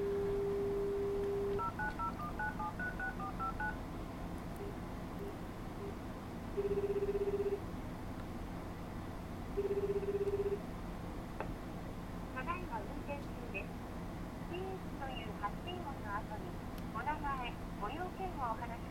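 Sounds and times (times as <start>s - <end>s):
landline phone dial tone: 0.0s - 3.8s, 6.6s - 7.6s, 9.6s - 10.6s
low hum: 0.0s - 18.8s
landline phone touch-tone keypad beeps: 1.6s - 3.8s.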